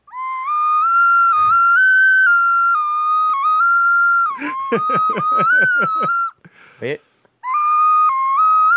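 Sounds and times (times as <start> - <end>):
small face-shaped whistle being blown: 0.1 - 6.4, 7.4 - 8.7
laughter: 4.4 - 6.2
speech: 4.7 - 6.2, 6.8 - 7.1.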